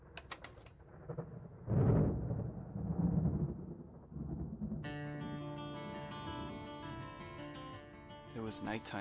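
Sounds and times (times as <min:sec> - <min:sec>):
deep rolling thunder of an approaching storm: 0:00.8 - 0:07.0
speech: 0:08.5 - 0:08.9.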